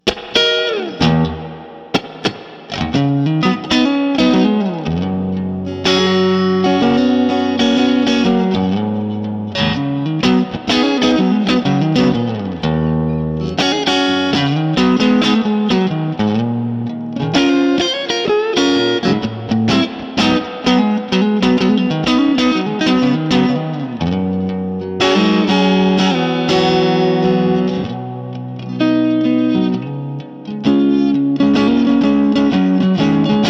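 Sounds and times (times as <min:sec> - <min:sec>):
Epic 1955 guitar neck pickup through Super Reverb amplifier: 0:00.0 - 0:33.4.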